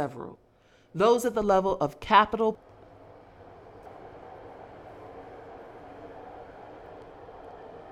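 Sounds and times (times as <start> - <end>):
speech: 0.0 - 2.7
rapid transit commuter train rumble and hiss: 2.6 - 7.9.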